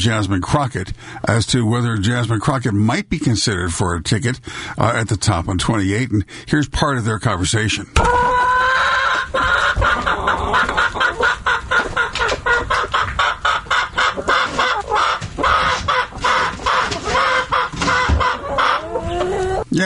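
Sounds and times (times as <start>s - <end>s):
speech: 0.0s - 8.8s
chickens clucking and squawking: 8.0s - 19.8s.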